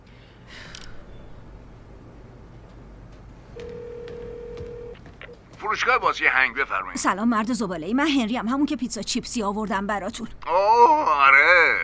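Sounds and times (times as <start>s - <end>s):
low noise: 0.0s - 11.8s
steady telephone ringing tone: 3.6s - 5.0s
speech: 5.6s - 10.9s.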